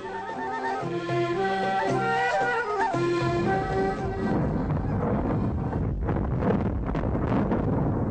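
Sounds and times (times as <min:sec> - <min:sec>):
tonal music: 0:00.0 - 0:05.0
dynamite blast inside a tunnel: 0:03.5 - 0:08.1.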